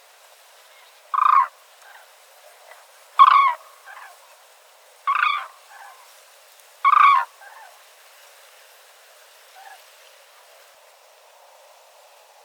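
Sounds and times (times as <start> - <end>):
Grus grus cranes calling on ground: 0.8 - 2.1, 2.7 - 4.2, 5.1 - 6.1, 6.8 - 7.8
Grus grus crane flight calls: 1.1 - 2.0, 3.2 - 4.2, 5.1 - 6.1, 6.9 - 7.7.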